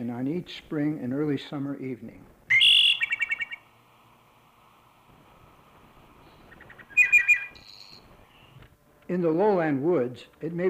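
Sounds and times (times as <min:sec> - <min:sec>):
speech: 0:00.0 - 0:02.4, 0:09.1 - 0:10.6
faint rustling hardwood forest in the eastern United States: 0:00.0 - 0:10.5
wood thrush singing in eastern United States hardwood forest: 0:02.5 - 0:03.6, 0:06.4 - 0:07.6.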